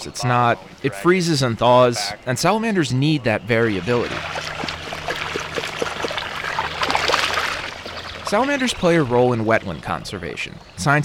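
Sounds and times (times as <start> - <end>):
speech: 0.0 - 4.5, 8.3 - 11.0
water sloshing and trickling in shallow wetland water: 3.5 - 10.8
net dipped through shallow wetland water to find salamander larvae: 3.8 - 8.6
small splashes and drips: 3.8 - 9.0.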